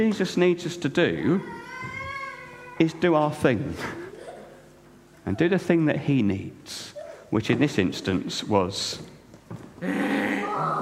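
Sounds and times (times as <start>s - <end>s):
speech: 0.0s - 1.6s, 2.8s - 4.0s, 5.2s - 9.1s, 9.8s - 10.7s
person imitating a donkey bray: 9.8s - 10.7s.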